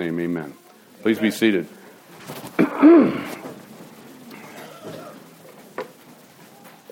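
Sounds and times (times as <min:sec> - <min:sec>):
speech: 0:00.0 - 0:03.4
speaker coughing: 0:02.6 - 0:03.4, 0:04.4 - 0:05.2
speaker clearing throat loudly: 0:02.6 - 0:03.5, 0:04.4 - 0:05.3.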